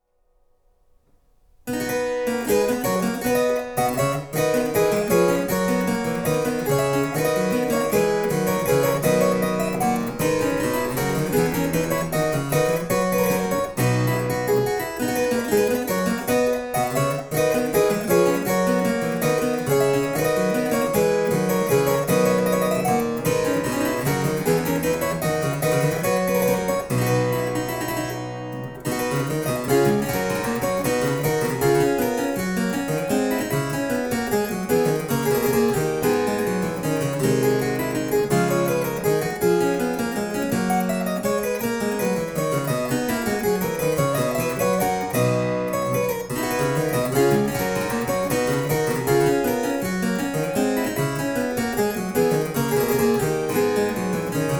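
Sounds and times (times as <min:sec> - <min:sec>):
harpsichords playing: 0:01.8 - 0:54.5.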